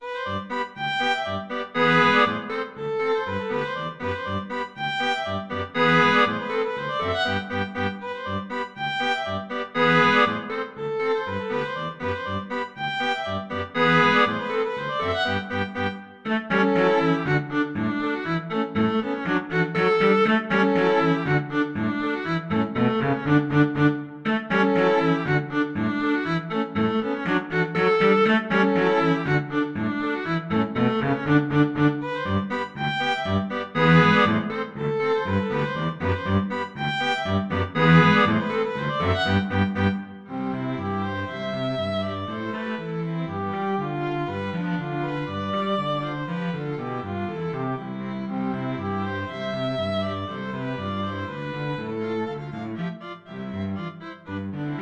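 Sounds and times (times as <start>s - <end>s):
string trio playing polka: 0.0s - 54.8s.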